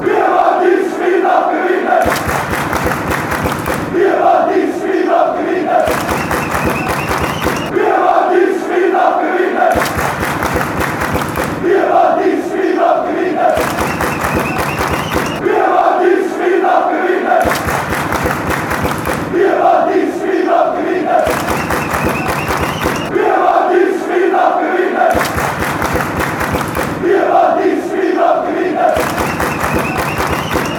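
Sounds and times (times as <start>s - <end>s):
football fans chanting: 0.0s - 30.7s
football fans clapping: 2.0s - 4.0s, 5.8s - 7.7s, 9.7s - 11.7s, 13.5s - 15.4s, 17.4s - 19.4s, 21.2s - 23.1s, 25.1s - 27.1s, 28.9s - 30.7s.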